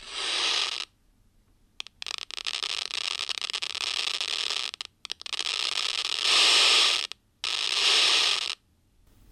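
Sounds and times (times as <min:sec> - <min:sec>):
bursts of harsh hissing static from cultured neuron seizure activity: 0:00.0 - 0:00.9, 0:01.8 - 0:08.6
crackling clicks of cultured neuron activity through a loudspeaker: 0:01.8 - 0:08.6.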